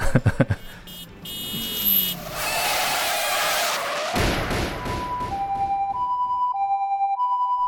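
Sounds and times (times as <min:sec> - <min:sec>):
long screeching car skid: 0:01.5 - 0:05.2
siren wailing and rising and falling: 0:01.8 - 0:07.6
heavy car crash crunch: 0:02.1 - 0:05.6
staged car crash impact thuds: 0:04.1 - 0:06.0.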